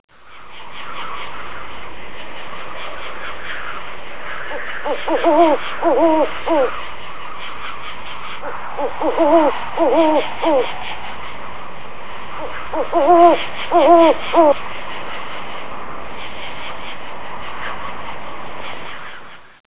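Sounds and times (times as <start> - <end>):
owl hoot: 3.2 - 6.9, 7.6 - 11.4, 12.4 - 14.6.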